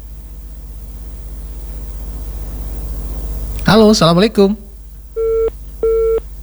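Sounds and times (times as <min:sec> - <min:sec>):
faint hum: 0:00.0 - 0:06.4
speech: 0:03.7 - 0:04.6
telephone busy tone after a call disconnects: 0:05.2 - 0:06.2.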